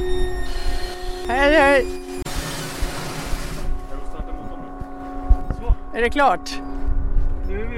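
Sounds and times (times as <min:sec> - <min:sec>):
boat engine droning at a boat wash: 0:00.0 - 0:06.8
speech: 0:01.3 - 0:02.0, 0:06.0 - 0:06.7, 0:07.5 - 0:07.7.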